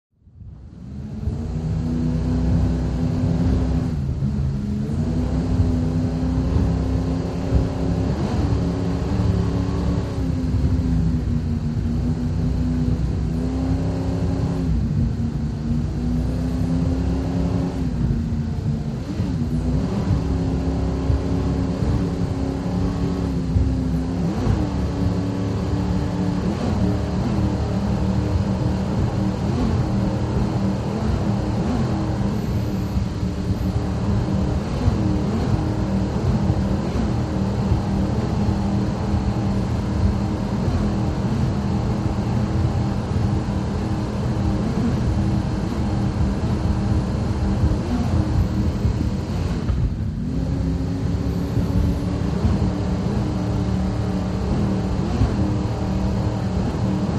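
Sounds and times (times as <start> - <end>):
offshore power boat racing: 1.2 - 57.1.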